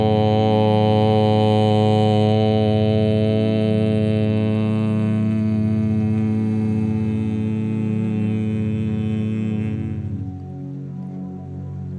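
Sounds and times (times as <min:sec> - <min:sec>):
deep droning chanted Om rich in overtones: 0:00.0 - 0:11.9.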